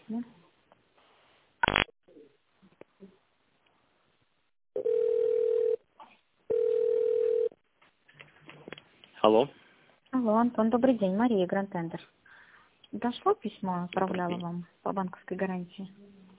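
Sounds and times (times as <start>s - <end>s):
speech: 0.1s - 0.4s, 9.4s - 9.6s, 10.4s - 12.2s, 12.9s - 16.1s
telephone ringing tone while a call is transferred: 4.8s - 5.8s, 6.5s - 7.5s.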